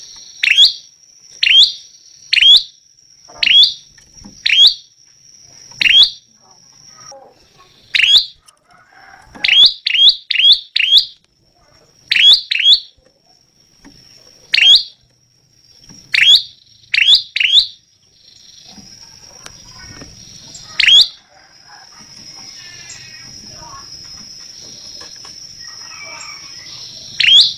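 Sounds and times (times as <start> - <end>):
lancur-type prinia singing loud clipped chip notes: 0.0 - 8.4, 9.1 - 27.5
continuous high whine: 0.0 - 27.5.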